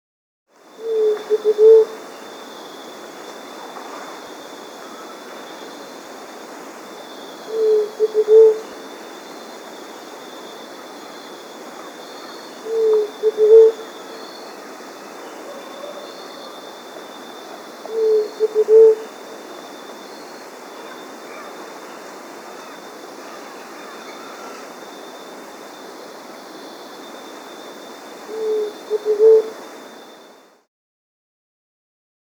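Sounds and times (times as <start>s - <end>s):
Large-Tailed Dove Leptotila megalura of the Andes in South America: 0.8s - 3.0s, 7.3s - 9.7s, 10.5s - 30.1s.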